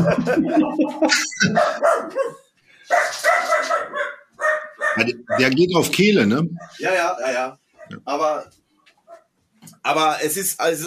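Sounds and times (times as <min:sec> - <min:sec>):
laughter: 0:00.0 - 0:01.6
speech: 0:00.0 - 0:02.4, 0:05.0 - 0:08.6, 0:09.8 - 0:10.8
dog barking and yipping: 0:01.5 - 0:05.6, 0:06.6 - 0:06.8, 0:09.1 - 0:09.3.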